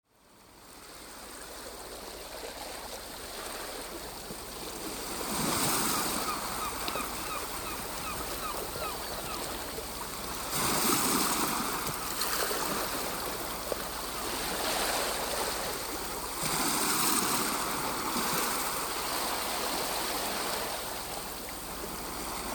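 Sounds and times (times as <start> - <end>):
birds on a shore: 0.3 - 22.5.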